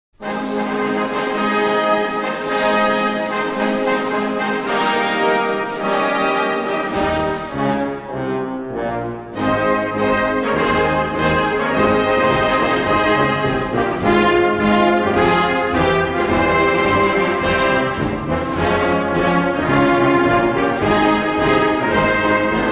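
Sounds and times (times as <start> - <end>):
instrumental music: 0.2 - 22.7.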